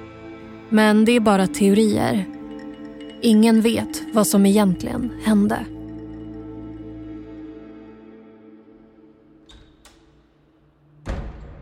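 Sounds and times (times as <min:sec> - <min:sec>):
speech: 0:00.7 - 0:02.4, 0:03.2 - 0:05.8
door slamming shut with a dull heavy thud: 0:11.0 - 0:11.6.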